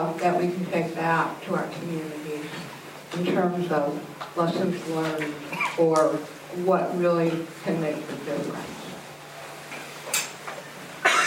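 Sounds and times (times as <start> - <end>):
speech: 0.2 - 8.8
woman coughing during a panel discussion: 5.5 - 5.8, 11.0 - 11.2.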